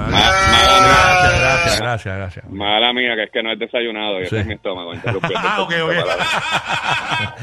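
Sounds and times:
goat bleating: 0.0s - 1.8s
speech: 2.0s - 7.4s
laughter: 4.2s - 7.4s.

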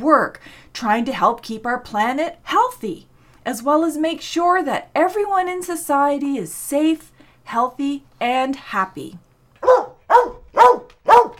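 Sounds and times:
speech: 0.0s - 10.4s
dog barking: 9.6s - 11.3s.

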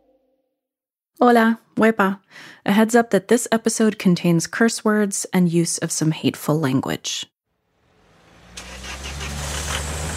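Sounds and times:
speech: 1.2s - 7.3s
car engine cranking and settling into idle: 7.6s - 10.1s.

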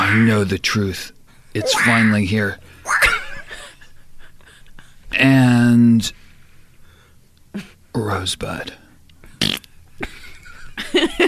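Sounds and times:
speech: 0.1s - 3.0s, 5.2s - 6.2s, 7.6s - 8.8s, 10.9s - 11.2s
fart: 9.4s - 9.7s.

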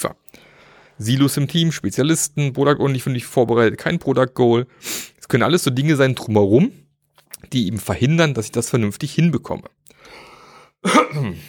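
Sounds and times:
speech: 1.0s - 6.8s, 7.4s - 11.4s
throat clearing: 10.8s - 11.4s.

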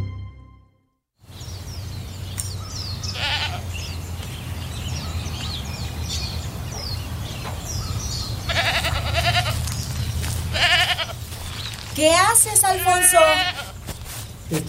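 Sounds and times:
outdoor noise: 1.2s - 14.6s
goats bleating: 3.2s - 3.7s, 8.5s - 11.4s, 12.4s - 13.8s.

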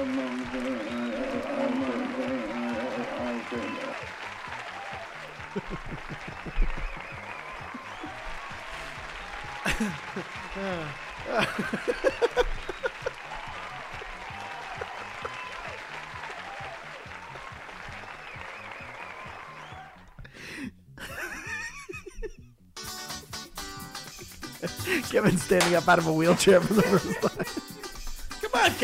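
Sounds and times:
laughter: 0.0s - 16.7s, 20.5s - 22.5s, 24.1s - 28.8s
crowd noise: 0.0s - 20.2s, 24.6s - 28.8s
large audience clapping and applauding: 0.0s - 22.0s, 24.0s - 28.8s
speech: 9.8s - 12.6s, 25.1s - 27.6s.

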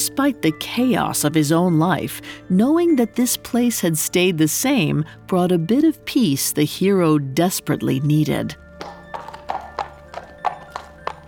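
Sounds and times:
speech: 0.1s - 8.6s
centaur's hooves trotting in a firelit cave: 8.8s - 11.2s.

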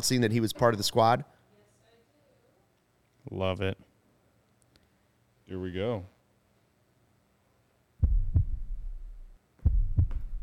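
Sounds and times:
speech: 0.0s - 1.4s, 3.2s - 3.9s, 5.5s - 6.1s
deep booming heartbeat sound effect: 8.0s - 10.4s.

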